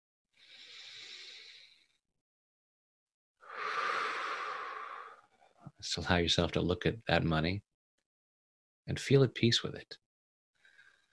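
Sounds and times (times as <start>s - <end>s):
deep breath: 0.4s - 2.0s, 3.4s - 5.7s, 10.6s - 11.1s
speech: 5.8s - 7.7s, 8.9s - 10.0s.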